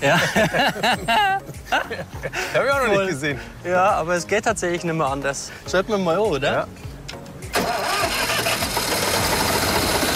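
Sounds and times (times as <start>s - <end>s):
laughter: 0.0s - 2.6s
speech: 0.0s - 6.9s
car engine cranking with the ignition key and starting: 7.5s - 10.1s
car engine running loudly: 7.8s - 10.1s.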